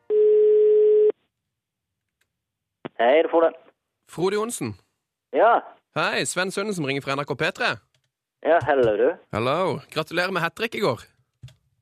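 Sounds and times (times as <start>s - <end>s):
telephone ringback tone from an outgoing call: 0.1s - 1.1s
speech: 3.0s - 7.8s, 8.4s - 11.1s.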